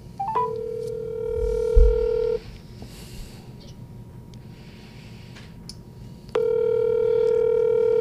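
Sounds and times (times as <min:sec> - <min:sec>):
telephone dial tone: 0:00.2 - 0:02.4, 0:06.4 - 0:07.9.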